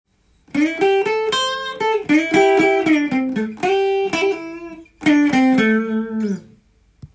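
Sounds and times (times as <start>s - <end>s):
short blues guitar solo: 0.5s - 6.6s.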